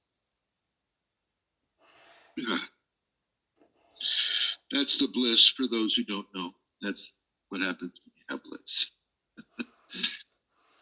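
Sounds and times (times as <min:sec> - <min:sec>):
faint hiss of air: 0:01.8 - 0:02.4
speech: 0:02.4 - 0:02.7, 0:04.8 - 0:10.2
sharp catches of breath and rushing breathy gasp: 0:03.8 - 0:04.7, 0:09.5 - 0:10.8.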